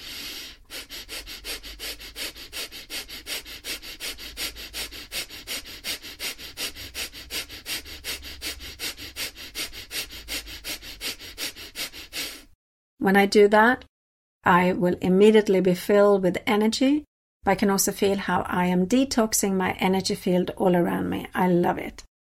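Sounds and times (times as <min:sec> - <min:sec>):
rapid forceful nasal breathing exercise: 0:00.0 - 0:12.6
speech: 0:13.0 - 0:22.1.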